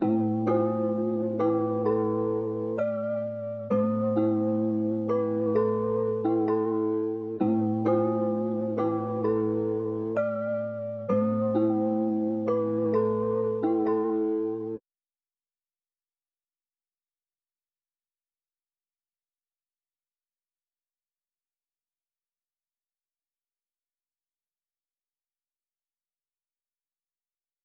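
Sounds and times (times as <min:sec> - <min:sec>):
bell melody loop in A minor: 0:00.0 - 0:14.8.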